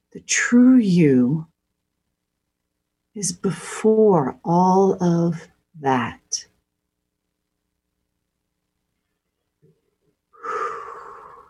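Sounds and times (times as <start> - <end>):
speech: 0.1 - 1.5, 3.2 - 6.5
faint breathy sounds: 9.6 - 11.4
deep breath inhale: 10.4 - 11.4.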